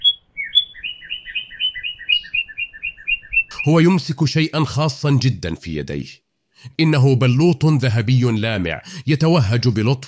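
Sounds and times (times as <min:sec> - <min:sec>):
small blue bird chirping: 0:00.0 - 0:03.7
speech: 0:03.6 - 0:10.0.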